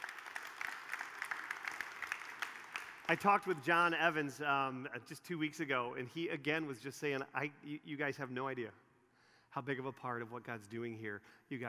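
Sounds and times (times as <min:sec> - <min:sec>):
crowd applauding with many hands clapping: 0:00.0 - 0:03.4
speech: 0:03.1 - 0:08.8, 0:09.5 - 0:11.6.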